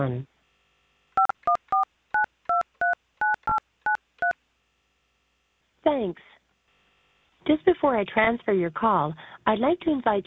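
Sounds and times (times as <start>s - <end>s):
speech: 0.0s - 0.3s, 5.9s - 6.3s, 7.5s - 10.2s
phone keypad DTMF tones keying in a phone number: 1.2s - 4.4s.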